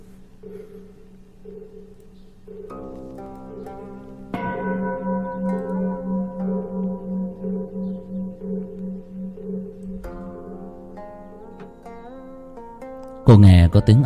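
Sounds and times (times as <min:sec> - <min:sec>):
speech: 0:00.4 - 0:04.2, 0:13.4 - 0:14.0
temple bell struck and ringing: 0:03.5 - 0:12.3.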